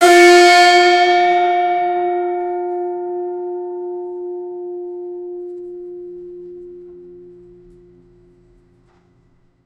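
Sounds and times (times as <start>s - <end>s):
guzheng string played high: 0.0s - 8.8s.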